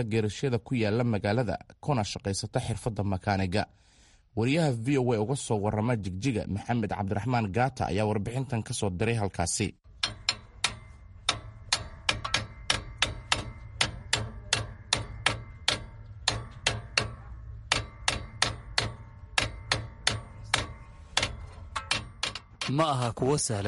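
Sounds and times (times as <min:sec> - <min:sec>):
speech: 0:00.0 - 0:10.2, 0:22.7 - 0:23.6
metal hammered in a vehicle repair garage in Jigjiga: 0:09.9 - 0:23.6.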